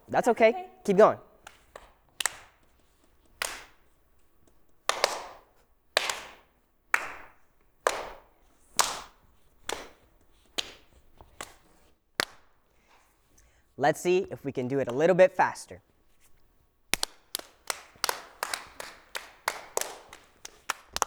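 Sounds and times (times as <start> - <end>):
single sharp hand claps passed around a circle of people in a game: 0.0 - 13.0, 14.8 - 15.6, 16.9 - 21.0
speech: 0.1 - 1.3, 13.8 - 15.9.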